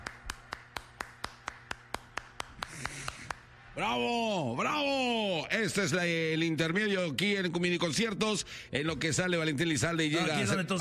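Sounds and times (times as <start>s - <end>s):
sharp evenly spaced applause claps: 0.0s - 3.6s
speech: 3.8s - 10.7s.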